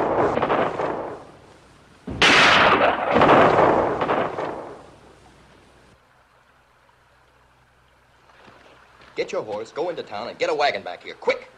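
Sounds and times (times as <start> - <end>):
rifle shot fired from a ledge above a canyon: 0.0 - 1.4, 2.1 - 5.1
noisy rumble: 0.0 - 11.5
speech: 9.3 - 11.5.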